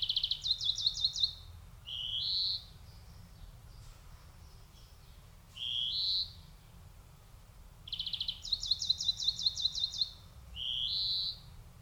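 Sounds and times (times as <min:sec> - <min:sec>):
European greenfinch Chloris chloris twittering trill: 0:00.0 - 0:03.3, 0:05.6 - 0:06.4, 0:07.9 - 0:11.5.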